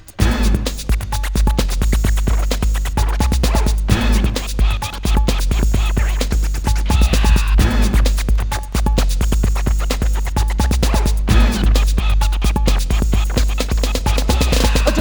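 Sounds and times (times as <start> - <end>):
loud steady beat with heavy bass: 0.0 - 15.0
rapid turntable record scratching: 0.0 - 15.0.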